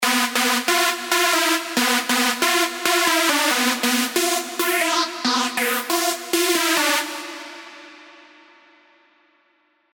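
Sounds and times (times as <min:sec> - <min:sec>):
synth lead: 0:00.0 - 0:07.8.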